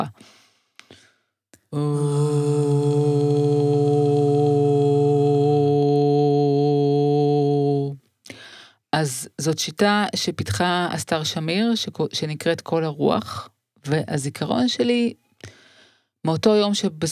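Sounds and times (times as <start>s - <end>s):
speech: 1.7s - 2.8s, 9.0s - 15.6s, 16.2s - 17.1s
low-pitched sustained vocal toning practised in preparation for childbirth: 1.7s - 8.0s.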